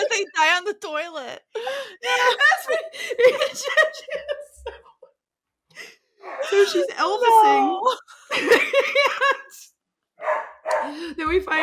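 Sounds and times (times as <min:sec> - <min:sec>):
speech: 0:00.2 - 0:02.5, 0:06.7 - 0:08.0
laughter: 0:01.7 - 0:05.2, 0:05.8 - 0:09.7
dogs barking: 0:10.2 - 0:11.0.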